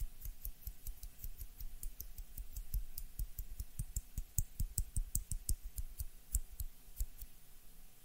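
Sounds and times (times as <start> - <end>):
hand clicks and taps: 0.2 - 7.3.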